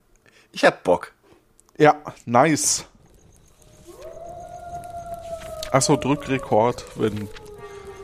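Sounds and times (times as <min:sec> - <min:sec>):
speech: 0:00.5 - 0:01.2, 0:01.8 - 0:02.9, 0:05.7 - 0:07.4
wolf howling: 0:02.9 - 0:08.0.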